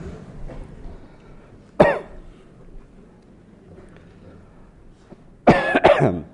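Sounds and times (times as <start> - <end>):
man with a cold clearing his throat: 1.8 - 2.2, 5.5 - 6.3
man with a cold coughing: 1.8 - 2.2, 5.5 - 6.3.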